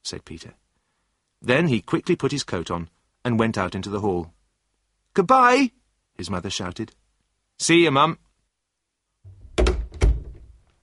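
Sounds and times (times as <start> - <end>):
speech: 0.1 - 0.6, 1.4 - 4.4, 5.2 - 7.0, 7.6 - 8.2
front door shutting: 9.3 - 10.6.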